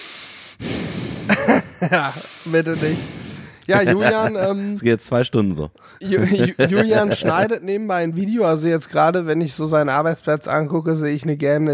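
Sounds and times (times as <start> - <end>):
breath pushed through the nose against a microphone: 0.0 - 1.5, 2.1 - 3.7
laughter: 1.3 - 3.0, 3.6 - 4.8, 6.0 - 7.5
speech: 1.3 - 11.7.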